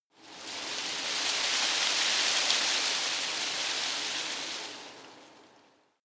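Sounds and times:
tree foliage rustling softly in a garden: 0:00.2 - 0:05.6.

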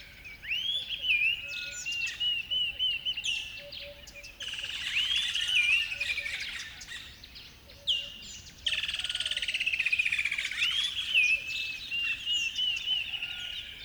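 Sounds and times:
chorus of birds singing at a river bed at dawn: 0:00.0 - 0:13.8.

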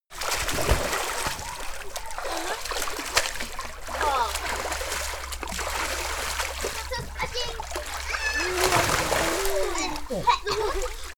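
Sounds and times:
children playing in a swimming pool: 0:00.2 - 0:11.1
laughter: 0:03.9 - 0:04.6, 0:06.7 - 0:11.1.

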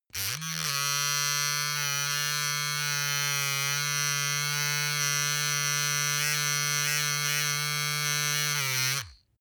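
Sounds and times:
electric razor clattering under load: 0:00.1 - 0:09.1.

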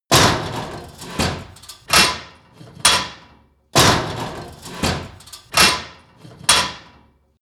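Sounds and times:
complex industrial metal machinery: 0:00.1 - 0:07.1.

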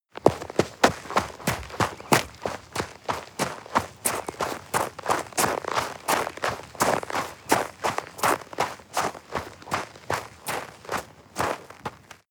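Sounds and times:
running footsteps in snow: 0:00.1 - 0:12.2.

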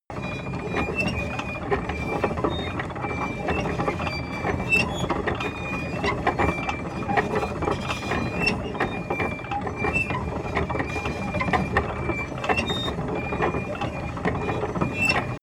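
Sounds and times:
tank engine running unsteadily: 0:00.1 - 0:15.4.

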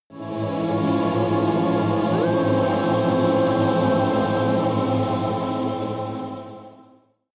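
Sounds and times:
evil choir chord sequence solo: 0:00.1 - 0:07.1.

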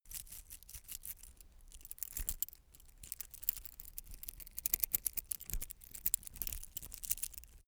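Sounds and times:
metal watchstrap rattling: 0:00.0 - 0:07.6.

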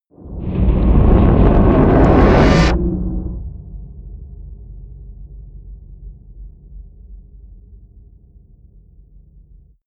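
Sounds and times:
eerie industrial swell: 0:00.3 - 0:04.0
rising whooshes: 0:00.4 - 0:03.6.

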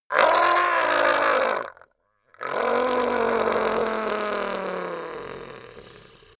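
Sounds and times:
long painful goblin groan: 0:00.1 - 0:01.8, 0:02.4 - 0:06.3.

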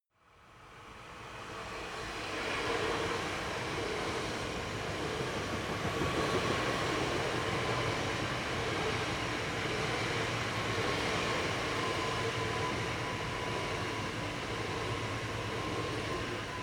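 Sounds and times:
small German train passing: 0:00.3 - 0:16.6.

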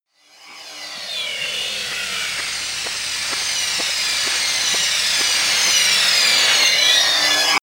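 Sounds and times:
high techno beat: 0:01.4 - 0:06.9.

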